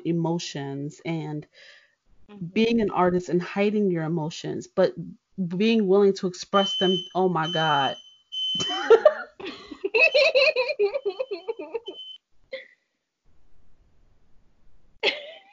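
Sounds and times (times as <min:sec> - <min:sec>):
speech: 0:00.0 - 0:09.1, 0:10.0 - 0:12.0
high steady electronic smoke alarm tone: 0:06.6 - 0:09.0, 0:10.0 - 0:12.2
laughter: 0:08.6 - 0:12.0.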